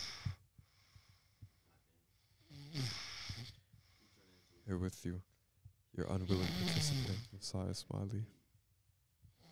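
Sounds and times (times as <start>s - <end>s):
speech: 4.7s - 5.3s, 6.0s - 8.4s
person snoring loudly: 6.2s - 7.2s.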